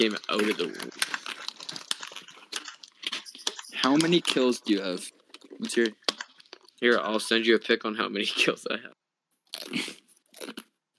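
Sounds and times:
speech: 0.0 - 1.2, 3.8 - 6.0, 6.8 - 9.0
crunching chips: 0.0 - 7.2, 9.5 - 10.7.

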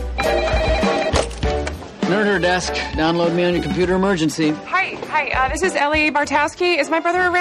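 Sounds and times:
phone ringing with melodic electronic ringtone: 0.2 - 1.3
speech: 2.2 - 7.3.

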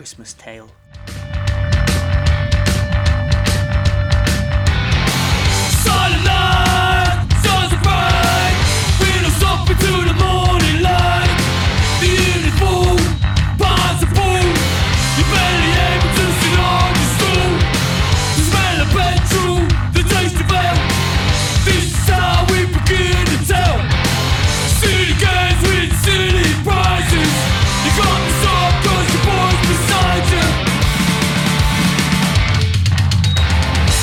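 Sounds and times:
speech: 0.0 - 1.2
distorted heavy punk Christmas song with gritty guitars and pounding drums: 0.0 - 34.0.

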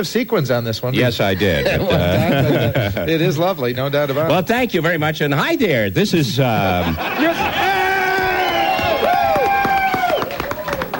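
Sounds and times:
speech: 0.0 - 7.6
laughter: 1.2 - 3.2, 6.2 - 9.0
loud sustained cheering and whooping voices: 7.0 - 10.9
audience clapping: 7.1 - 10.9.

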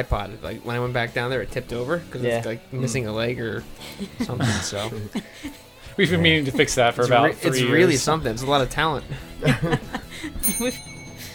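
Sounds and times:
speech: 0.0 - 10.9
people chuckling and laughing: 3.7 - 7.6, 8.8 - 11.3
small hand bell ringing: 10.4 - 11.3.

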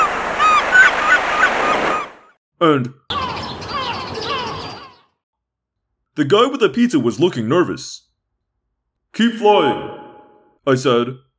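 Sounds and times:
flock of seagulls squawking: 0.0 - 2.4, 3.1 - 5.1
speech: 2.6 - 3.1, 6.2 - 8.1, 9.2 - 10.0, 10.6 - 11.2.

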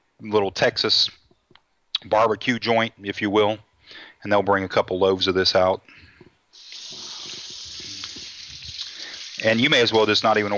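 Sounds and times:
speech: 0.2 - 1.2, 2.0 - 6.0, 9.4 - 10.5
running tap water rinsing honey out of a measuring cup at a sink: 6.6 - 10.5.

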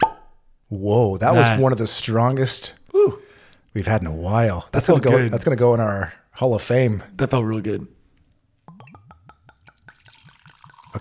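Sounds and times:
speech: 0.7 - 8.0
beer glugging from a bottle into a glass: 8.7 - 10.9.

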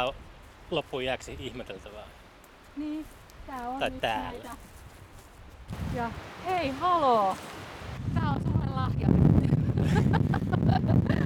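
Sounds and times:
speech: 0.0 - 2.2, 2.8 - 4.7, 5.7 - 7.6
wind buffeting a microphone outdoors: 3.4 - 11.2.

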